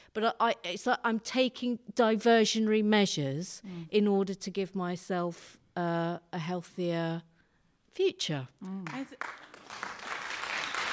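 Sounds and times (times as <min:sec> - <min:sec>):
speech: 0:00.2 - 0:07.3, 0:08.0 - 0:09.9
small crowd applauding: 0:08.9 - 0:10.9.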